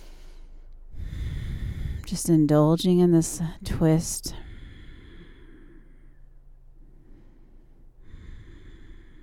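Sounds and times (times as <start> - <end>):
deep inhale and exhale breathing: 0.0 - 2.1, 4.3 - 9.2
speech: 2.1 - 4.5.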